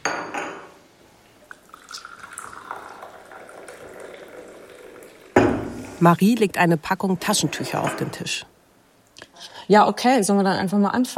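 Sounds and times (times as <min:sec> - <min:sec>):
coffee pouring into a cup: 0:01.4 - 0:06.0
cup being set down with a sharp knock: 0:05.4 - 0:05.9
speech: 0:06.0 - 0:08.6, 0:09.7 - 0:11.1.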